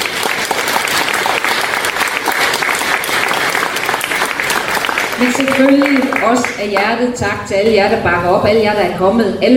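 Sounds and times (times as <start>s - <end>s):
audience applauding: 0.0s - 6.9s
speech: 5.2s - 9.5s.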